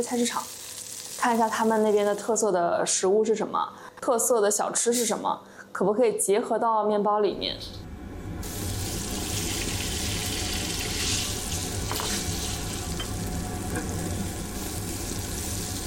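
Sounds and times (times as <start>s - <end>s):
speech: 0.0s - 0.6s, 1.2s - 7.9s
beef and dried chili peppers frying in a pan: 0.0s - 2.4s, 8.4s - 15.8s.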